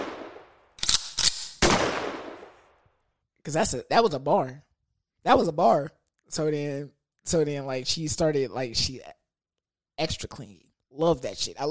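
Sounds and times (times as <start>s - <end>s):
gunshot sound effects: 0.0s - 2.6s
speech: 3.4s - 9.2s, 10.0s - 11.6s.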